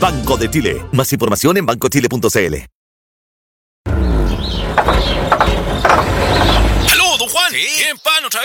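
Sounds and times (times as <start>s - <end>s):
speech: 0.0s - 2.8s, 7.5s - 8.4s
grinding squealing burst as the truck engine fails: 3.9s - 7.3s
truck engine sputtering and struggling with a heavy low rumble: 3.9s - 7.3s
loose mechanical clattering and rattling of a failing truck engine: 4.5s - 6.9s.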